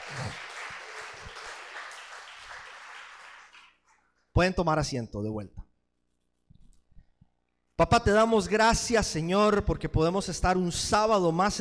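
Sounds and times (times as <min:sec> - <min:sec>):
crowd applauding: 0:00.0 - 0:04.0
speech: 0:04.4 - 0:05.6, 0:07.8 - 0:11.5.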